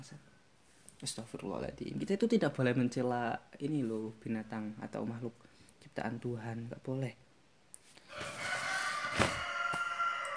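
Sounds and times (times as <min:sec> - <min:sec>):
speech: 0:01.0 - 0:07.2
rooster crowing: 0:08.0 - 0:10.3.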